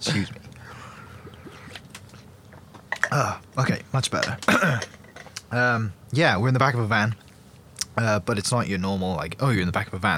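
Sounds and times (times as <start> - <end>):
speech: 0.0 - 0.5, 3.1 - 7.2, 8.0 - 10.1
low hum: 0.0 - 10.1
person sipping water and swallowing in the back of a van: 1.1 - 2.3, 7.2 - 7.7.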